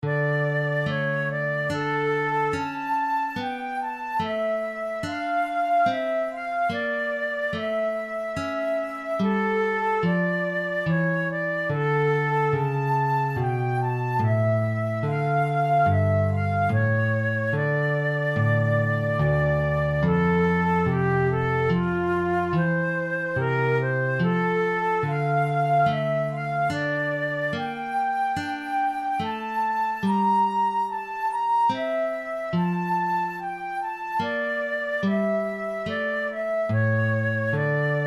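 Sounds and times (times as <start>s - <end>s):
flute playing an air in D minor: 0.0s - 38.0s.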